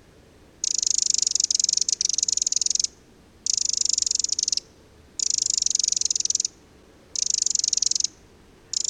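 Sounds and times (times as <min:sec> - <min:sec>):
Eurasian wren Troglodytes troglodytes churring: 0:00.6 - 0:04.6, 0:05.2 - 0:06.5, 0:07.2 - 0:08.8.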